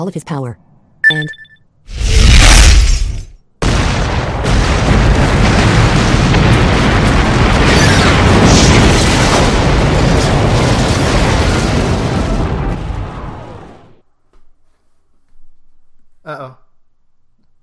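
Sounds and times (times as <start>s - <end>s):
speech: 0.0s - 3.1s
missile strike explosion: 2.0s - 14.0s
crashing shattering debris from missile strike: 3.7s - 13.0s.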